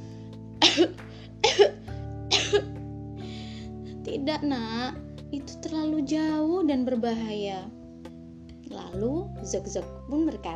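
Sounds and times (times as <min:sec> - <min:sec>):
person coughing: 0:00.6 - 0:02.7
speech: 0:04.2 - 0:07.8, 0:08.7 - 0:10.5.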